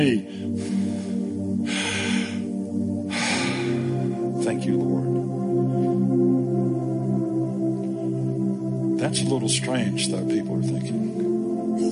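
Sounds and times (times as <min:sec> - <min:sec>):
speech: 0:00.0 - 0:00.4, 0:04.5 - 0:05.2, 0:09.0 - 0:11.0
low sustained tone: 0:00.0 - 0:11.9
congregation of people breathing out and in together: 0:00.2 - 0:04.4, 0:05.5 - 0:06.6, 0:10.9 - 0:11.9.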